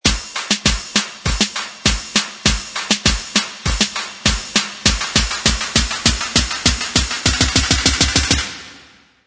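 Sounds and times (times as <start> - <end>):
buildup drums at 100 BPM: 0.0 - 9.0.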